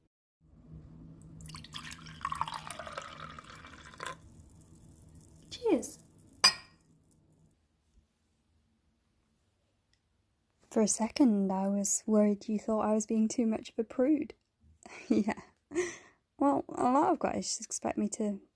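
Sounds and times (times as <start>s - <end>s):
wine pouring into a glass: 1.4s - 6.7s
sharp glassy clinks: 6.4s - 6.8s
speech: 10.8s - 14.4s, 15.1s - 18.5s.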